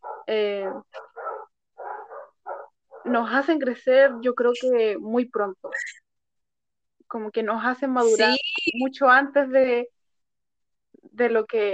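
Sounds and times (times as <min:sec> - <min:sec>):
several dogs barking and yelping: 0:00.0 - 0:03.2
speech: 0:00.3 - 0:01.0, 0:03.1 - 0:05.9, 0:07.1 - 0:10.0, 0:11.1 - 0:11.7.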